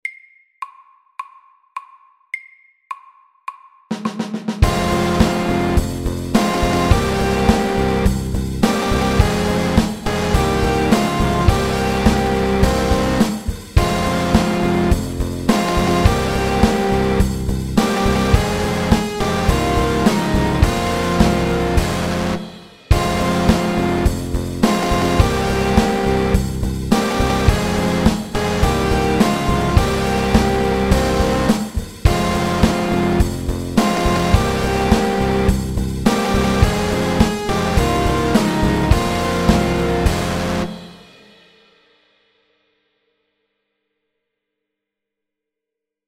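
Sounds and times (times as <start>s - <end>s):
metal riff in triplets: 4.6s - 41.2s.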